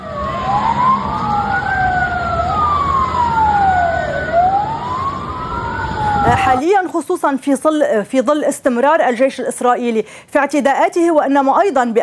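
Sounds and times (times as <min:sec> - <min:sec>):
ambulance siren wailing in central Gaza: 0:00.0 - 0:06.6
low rumble of engine and traffic noise: 0:00.0 - 0:06.6
speech: 0:06.5 - 0:12.0.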